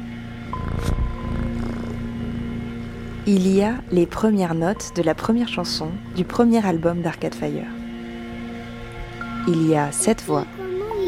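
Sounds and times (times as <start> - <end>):
cat purring: 0.4 - 6.4
speech: 3.2 - 7.8, 9.5 - 10.6.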